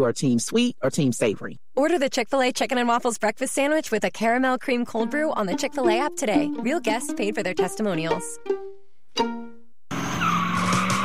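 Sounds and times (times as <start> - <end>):
speech: 0.0 - 9.4
drag racing car tires squealing at a street drag race on Route 66: 9.9 - 11.0.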